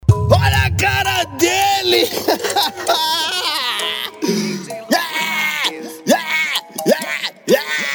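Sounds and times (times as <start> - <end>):
exaggerated theatrical fake crying with whiny sobs and wails: 0.1 - 7.9
laughter: 1.9 - 5.5.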